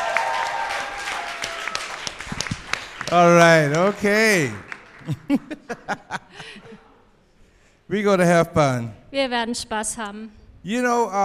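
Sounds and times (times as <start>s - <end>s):
congregation applauding: 0.0s - 5.6s
speech: 3.1s - 6.6s, 7.9s - 11.2s
laughter: 4.0s - 7.0s.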